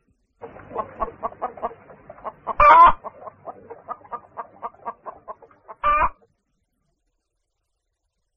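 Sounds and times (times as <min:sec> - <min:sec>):
hen clucking: 0:00.4 - 0:06.2
hen squawking: 0:00.7 - 0:03.1, 0:03.7 - 0:06.2.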